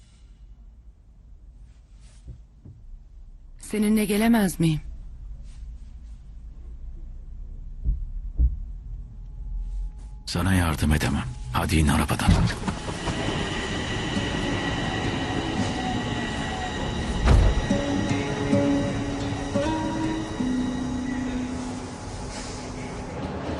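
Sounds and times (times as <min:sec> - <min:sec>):
train departing from a station platform: 0:00.0 - 0:23.5
low thump: 0:02.3 - 0:03.5, 0:06.7 - 0:09.5, 0:17.2 - 0:17.8
speech: 0:03.7 - 0:04.9, 0:10.4 - 0:13.2
high train wheel squeals: 0:12.5 - 0:23.5.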